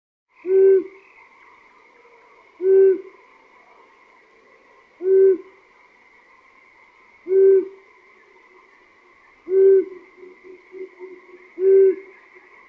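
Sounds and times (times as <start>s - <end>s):
long-eared owl hooting: 0.4s - 1.2s, 1.9s - 3.8s, 5.0s - 5.6s, 7.2s - 7.8s, 9.4s - 12.6s.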